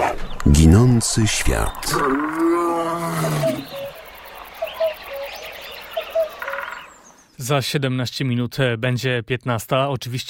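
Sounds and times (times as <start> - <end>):
birds chirping: 0.0 - 7.6
speech: 0.5 - 2.5, 7.4 - 10.2
lion roaring: 1.2 - 3.9.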